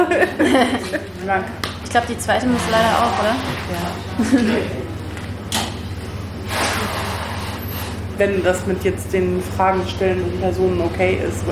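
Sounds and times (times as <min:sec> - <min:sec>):
laughter: 0:00.0 - 0:01.3, 0:04.1 - 0:04.9
speech: 0:00.1 - 0:04.8, 0:08.2 - 0:11.5
two doors opening: 0:02.6 - 0:08.2.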